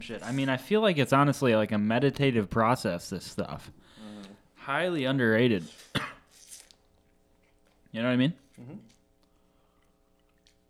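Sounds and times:
speech: 0.0s - 4.0s, 4.7s - 6.1s, 7.9s - 8.9s
person chewing food with wet mouth smacks: 5.8s - 10.6s.

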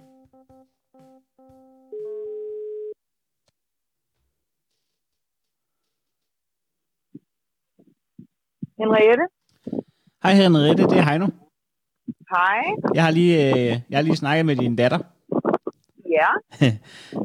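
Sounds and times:
telephone line tone while calling a mobile phone: 0.0s - 3.0s
speech: 8.8s - 9.4s, 10.2s - 11.4s, 12.3s - 15.2s, 16.2s - 17.2s
laughter: 16.6s - 16.8s.

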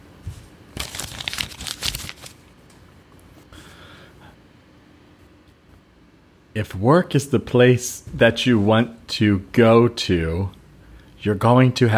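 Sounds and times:
paper note being unfolded, crinkling: 0.7s - 2.6s
speech: 6.6s - 10.6s, 11.2s - 11.9s.

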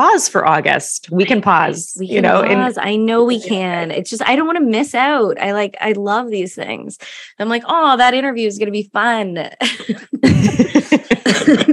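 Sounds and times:
speech: 0.0s - 11.7s
laughter: 9.6s - 11.7s
fit of harsh coughing: 9.7s - 11.7s.

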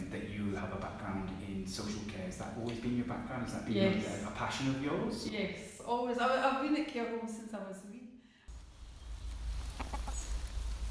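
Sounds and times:
speech: 0.1s - 8.0s
chickens clucking in a care home's garden: 9.5s - 10.6s.

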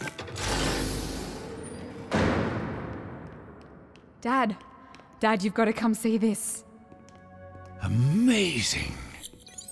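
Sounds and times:
heavy mechanical door grinding and hissing open: 0.2s - 2.6s
speech: 4.2s - 6.7s, 7.8s - 9.1s.

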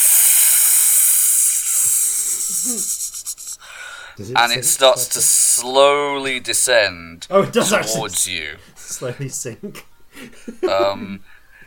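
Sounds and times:
vocal hiss voicing a creature's non-menacing hiss: 0.0s - 3.9s
speech: 2.6s - 3.2s, 4.2s - 11.3s.

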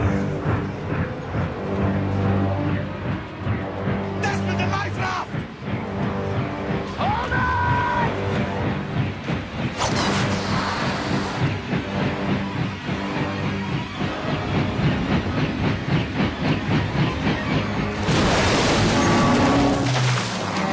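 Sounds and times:
helicopter crashing into the ocean with mechanical roar and rhythmic chop: 0.0s - 20.6s
hissing rushing bursts: 6.8s - 18.8s.

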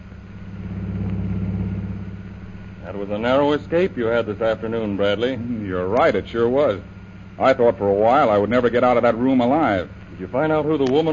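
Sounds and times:
car engine drone of a car driving through Shanghai streets: 0.0s - 11.1s
speech: 2.9s - 11.1s.

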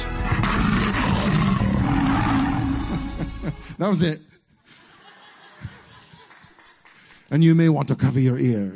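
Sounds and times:
lion roaring: 0.2s - 3.2s
laughter: 2.5s - 3.8s, 4.7s - 7.1s
speech: 3.8s - 4.3s, 7.3s - 8.7s.

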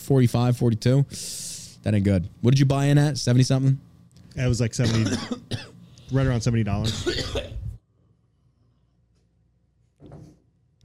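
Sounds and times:
speech: 0.1s - 7.6s
person coughing: 4.8s - 5.8s, 6.8s - 7.7s.

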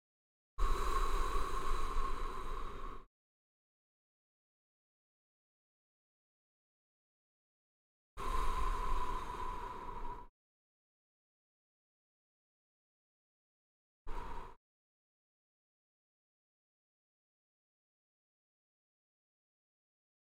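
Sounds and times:
deep slow breathing during a guided relaxation exercise: 0.6s - 3.1s, 8.2s - 10.3s, 14.1s - 14.6s.

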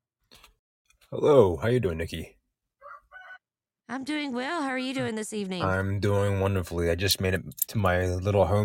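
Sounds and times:
speech: 1.1s - 2.4s, 3.9s - 8.6s
rooster crowing: 2.8s - 3.5s.

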